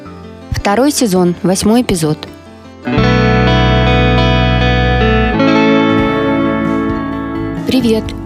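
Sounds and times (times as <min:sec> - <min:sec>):
speech: 0:00.7 - 0:03.1, 0:07.7 - 0:08.2
sustained effects-heavy electric guitar chords: 0:02.8 - 0:08.2
deep bass: 0:02.9 - 0:07.8.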